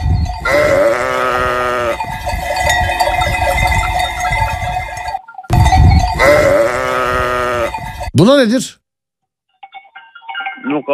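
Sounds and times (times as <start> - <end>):
faint clanking of cowbells: 0.0 - 8.2, 9.6 - 10.9
sheep bleating from a played recording: 0.5 - 2.0, 6.2 - 7.9
speech: 8.2 - 8.8.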